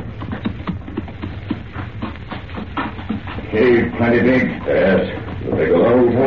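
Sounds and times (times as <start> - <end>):
horse hooves clip-clopping over hard ground toward a cave: 0.0 - 6.2
low rumbling background: 0.0 - 6.2
speech: 3.6 - 6.2.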